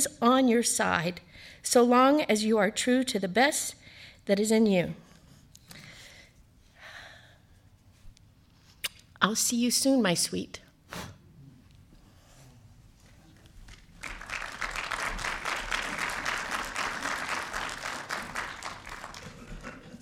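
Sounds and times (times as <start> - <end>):
speech: 0.0 - 5.0, 9.2 - 11.1
room full of people applauding: 13.7 - 20.0.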